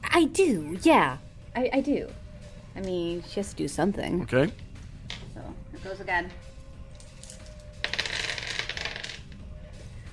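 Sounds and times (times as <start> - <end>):
speech: 0.2 - 2.2, 2.8 - 4.6, 5.4 - 6.5
handful of dice clattering across a hard surface: 6.9 - 9.4.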